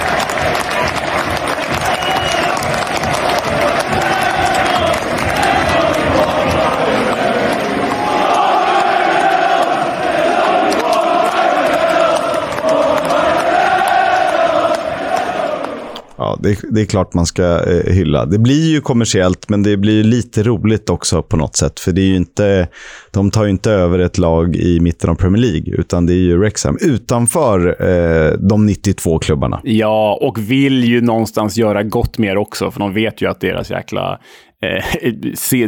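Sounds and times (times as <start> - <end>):
large stadium crowd singing a football chant: 0.0 - 16.0
speech: 16.5 - 35.6.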